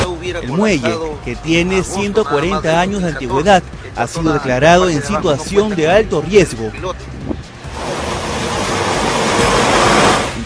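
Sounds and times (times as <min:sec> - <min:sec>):
speech: 0:00.2 - 0:07.5
gusty wind buffeting the microphone: 0:07.0 - 0:10.4
large ocean waves crashing on shore: 0:07.5 - 0:10.4.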